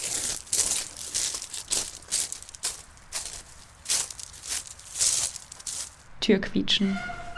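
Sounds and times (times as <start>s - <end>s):
crunching footsteps: 0.0s - 6.1s
speech: 6.3s - 7.2s.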